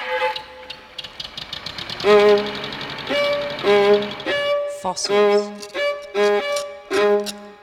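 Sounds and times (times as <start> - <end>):
forklift truck engine running with a pulsing chug: 0.0 - 7.4
strained mechanical whine: 0.1 - 4.7
speech: 4.8 - 5.7.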